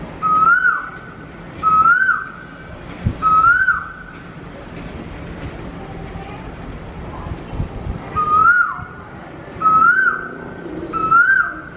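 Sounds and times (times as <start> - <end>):
Asian koel singing rising whistles: 0.2 - 1.0, 1.6 - 2.4, 3.2 - 4.0, 8.2 - 9.0, 9.6 - 11.7.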